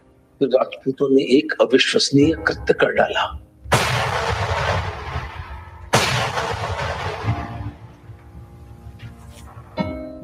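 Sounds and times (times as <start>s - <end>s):
speech: 0.4s - 3.4s
Mughal cannons firing in battle: 3.7s - 8.0s.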